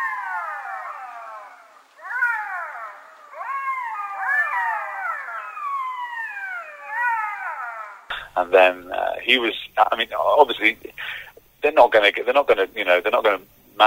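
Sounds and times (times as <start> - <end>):
pack of jackals howling in a meadow: 0.0 - 8.3
speech: 8.4 - 13.8.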